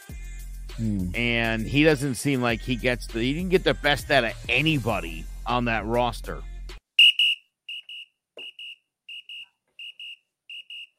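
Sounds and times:
speech: 0:00.8 - 0:06.5
referee whistle double blasts: 0:07.0 - 0:10.9.

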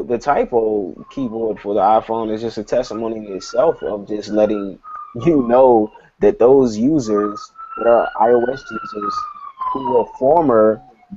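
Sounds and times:
police siren wailing outside a New York window: 0:00.0 - 0:11.1
speech: 0:00.0 - 0:11.1.

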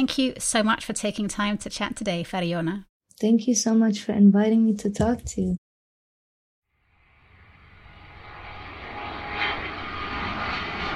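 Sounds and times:
speech: 0:00.0 - 0:05.6
private jet engine roaring: 0:06.9 - 0:10.9.

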